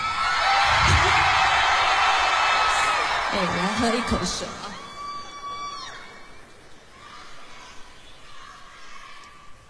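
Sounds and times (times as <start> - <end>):
large crowd screaming and cheering: 0.0 - 9.6
speech: 3.4 - 4.6.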